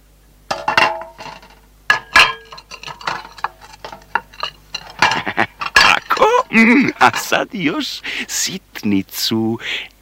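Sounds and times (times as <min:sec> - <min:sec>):
metal pots clanking as they are packed into a chest: 0:00.5 - 0:07.4
speech: 0:06.6 - 0:09.9.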